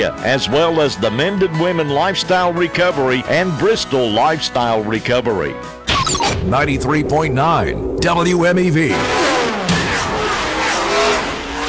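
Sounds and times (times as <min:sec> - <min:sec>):
speech: 0:00.0 - 0:09.2
NASCAR Cup Series race car engines roaring: 0:06.6 - 0:11.6
race car tire squeal: 0:09.0 - 0:11.6.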